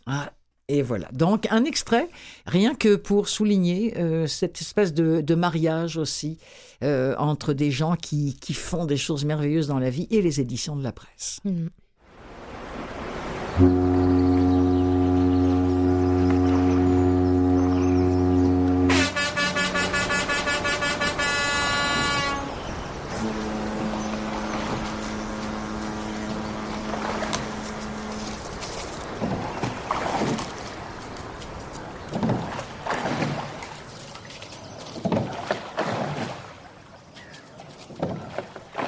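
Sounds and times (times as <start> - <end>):
speech: 0.1 - 11.8, 13.6 - 14.1
oars rowing a boat through water: 12.2 - 38.8
boat foghorns at a quay: 13.1 - 32.5
rumbling boat engine: 13.9 - 31.6.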